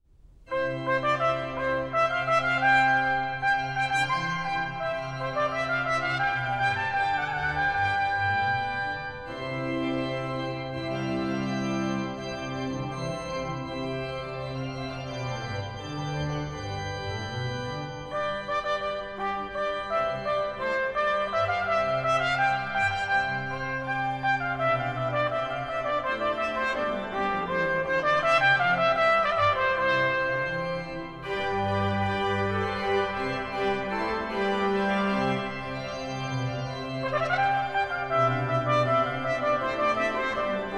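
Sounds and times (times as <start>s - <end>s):
trumpet playing: 0.5s - 9.5s, 18.1s - 40.7s
organ playing: 0.5s - 40.7s.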